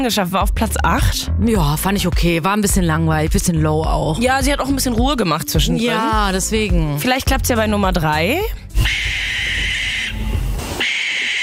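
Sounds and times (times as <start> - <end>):
speech: 0.0 - 9.2
barn owl screech: 8.8 - 11.4.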